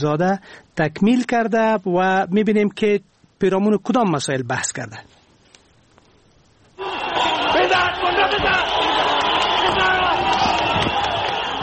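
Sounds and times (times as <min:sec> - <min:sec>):
speech: 0:00.0 - 0:05.2
large stadium crowd roaring and cheering: 0:06.8 - 0:11.6.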